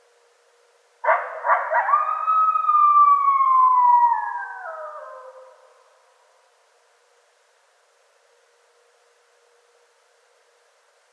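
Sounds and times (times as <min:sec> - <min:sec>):
coyotes howling and yipping: 0:01.1 - 0:05.8.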